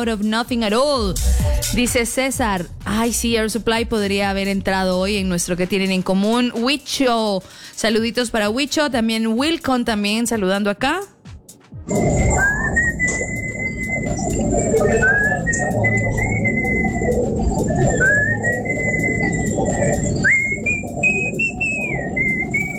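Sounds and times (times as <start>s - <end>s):
dense steady rumble: 0.0s - 6.0s, 11.9s - 22.7s
speech: 0.0s - 11.2s, 11.9s - 13.2s, 14.2s - 16.2s
person whistling a short melodic tune: 11.9s - 22.7s.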